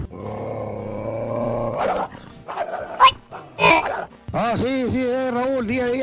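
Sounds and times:
dog growling in a rumbling snarl: 0:00.0 - 0:04.2
dog barking: 0:01.8 - 0:04.1
speech: 0:04.5 - 0:06.0.

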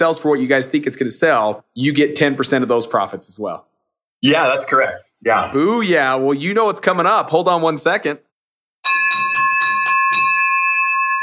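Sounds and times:
speech: 0:00.0 - 0:08.3
victory bell ringing: 0:08.8 - 0:11.2.

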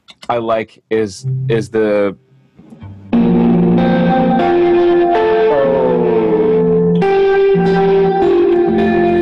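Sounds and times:
speech: 0:00.3 - 0:02.3
sustained chords through a washy reverb: 0:01.2 - 0:08.2.

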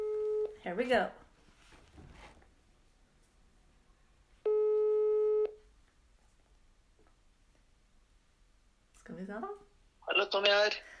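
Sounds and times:
speech: 0:00.6 - 0:01.2, 0:09.1 - 0:09.6, 0:10.2 - 0:10.9
electronic telephone ringing tone on speakerphone: 0:04.5 - 0:05.6.

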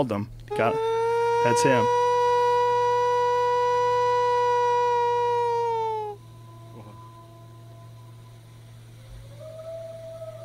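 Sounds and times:
speech: 0:00.0 - 0:02.0
wolf starting the pack's howl: 0:00.5 - 0:08.3, 0:09.0 - 0:10.4.

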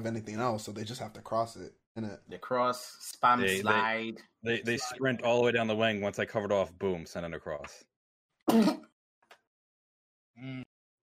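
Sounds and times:
speech: 0:00.0 - 0:07.9, 0:08.5 - 0:08.9, 0:10.4 - 0:10.7
person sneezing: 0:08.5 - 0:08.9.

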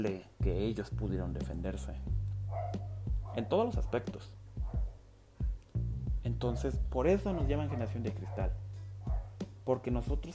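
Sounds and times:
speech: 0:00.0 - 0:02.8, 0:03.4 - 0:04.4, 0:06.2 - 0:08.6, 0:09.6 - 0:10.3
dog barking: 0:02.5 - 0:04.0, 0:04.6 - 0:05.0, 0:07.3 - 0:09.4.

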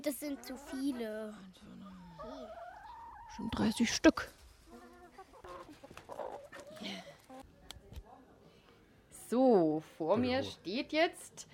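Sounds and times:
speech: 0:00.0 - 0:02.6, 0:03.3 - 0:04.4, 0:09.3 - 0:11.5
hens clucking while pecking at dandelion: 0:00.0 - 0:07.5.

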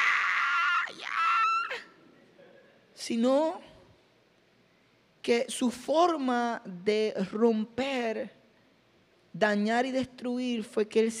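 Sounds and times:
person imitating the shriek of a black horned creature: 0:00.0 - 0:01.9
speech: 0:03.0 - 0:03.7, 0:05.2 - 0:08.4, 0:09.4 - 0:11.1.

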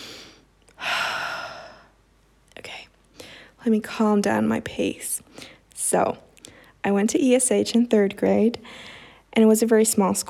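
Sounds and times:
heavy breathing: 0:00.0 - 0:01.9, 0:03.1 - 0:03.6, 0:08.6 - 0:09.3
speech: 0:03.6 - 0:10.2.

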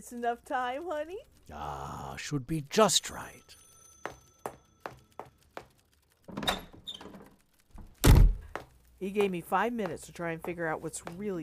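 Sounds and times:
speech: 0:00.0 - 0:04.2, 0:09.0 - 0:11.4
quick tapping footsteps: 0:04.0 - 0:11.4
door creaking open with a squeaky swing: 0:06.2 - 0:08.5
door shutting with a heavy thud: 0:07.8 - 0:08.5.

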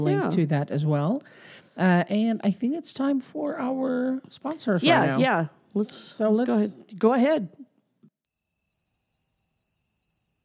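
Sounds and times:
speech: 0:00.0 - 0:07.6
crickets chirping: 0:08.2 - 0:10.4.

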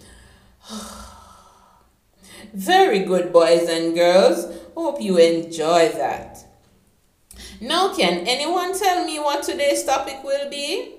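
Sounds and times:
slow exhale by a person doing a breathing exercise: 0:00.0 - 0:02.5
speech: 0:02.5 - 0:06.4, 0:07.6 - 0:10.9.

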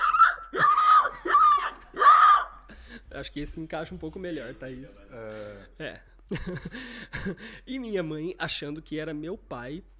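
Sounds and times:
voice imitating a pig squealing: 0:00.0 - 0:02.7
speech: 0:03.2 - 0:09.9
laughter: 0:06.3 - 0:07.4.

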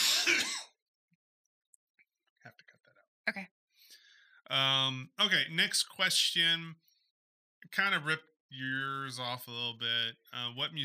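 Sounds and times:
harsh raspy cough: 0:00.0 - 0:00.8
speech: 0:00.2 - 0:00.6, 0:03.3 - 0:03.6, 0:04.5 - 0:06.8, 0:07.7 - 0:10.8.

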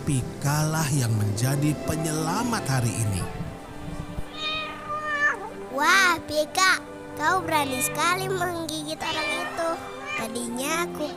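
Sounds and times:
speech: 0:00.1 - 0:03.4, 0:05.8 - 0:11.1
cat meowing loudly: 0:04.3 - 0:05.6, 0:07.4 - 0:08.4, 0:09.0 - 0:10.5.

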